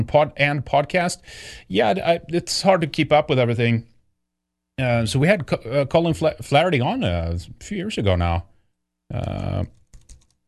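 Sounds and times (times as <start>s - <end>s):
speech: 0.0s - 3.9s, 4.8s - 8.5s, 9.1s - 9.8s
typing on a computer keyboard while searching: 9.2s - 10.4s.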